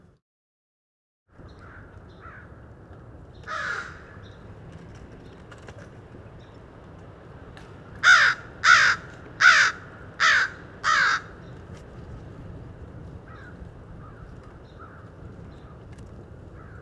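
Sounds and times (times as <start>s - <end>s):
quiet outdoor hum: 1.4s - 16.8s
crow cawing by a road: 3.5s - 4.2s, 8.0s - 11.4s.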